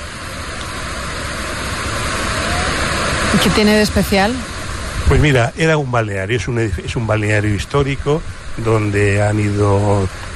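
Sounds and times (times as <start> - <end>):
large waterfall rushing through a town: 0.0 - 10.3
speech: 3.4 - 4.5, 5.1 - 10.3.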